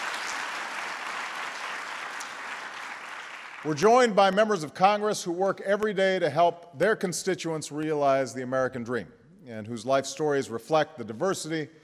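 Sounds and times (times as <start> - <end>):
large audience applause: 0.0 - 3.8
speech: 3.6 - 11.8.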